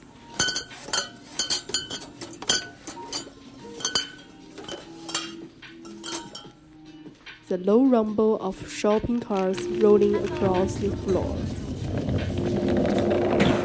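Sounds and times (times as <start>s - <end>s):
faint store hum: 0.0s - 13.6s
glass bottles clinking on store shelves: 0.3s - 6.7s
speech: 7.5s - 12.3s.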